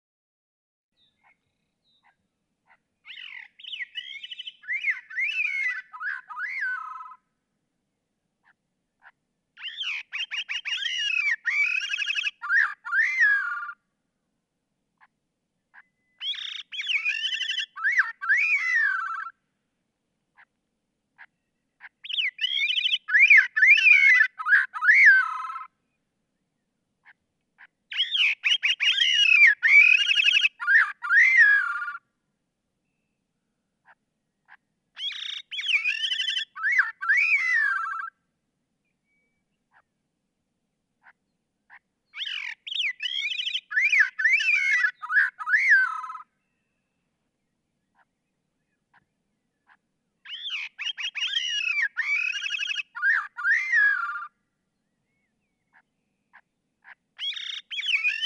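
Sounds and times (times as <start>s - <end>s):
Gray-cheeked Thrush calling: 2.7s - 7.2s, 9.0s - 13.8s, 16.2s - 19.4s, 21.8s - 25.7s, 27.0s - 32.0s, 34.5s - 38.1s, 41.0s - 46.3s, 50.2s - 54.3s, 56.3s - 58.2s.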